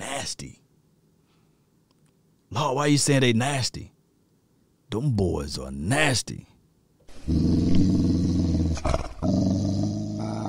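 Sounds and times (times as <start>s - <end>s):
speech: 0.2s - 0.6s, 2.5s - 4.0s, 4.9s - 6.5s, 7.3s - 7.7s
dog growling: 7.1s - 10.4s.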